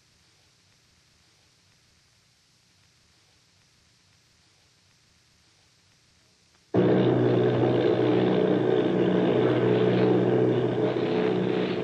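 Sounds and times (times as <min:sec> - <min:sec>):
formation of military bomber plane propeller engines droning: 0:06.8 - 0:11.8.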